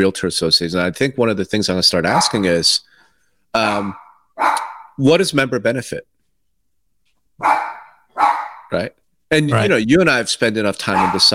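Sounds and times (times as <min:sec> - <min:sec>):
speech: 0:00.0 - 0:02.9, 0:03.5 - 0:06.1, 0:08.7 - 0:11.3
dog barking: 0:02.1 - 0:02.5, 0:03.9 - 0:05.0, 0:07.4 - 0:08.8, 0:10.9 - 0:11.3.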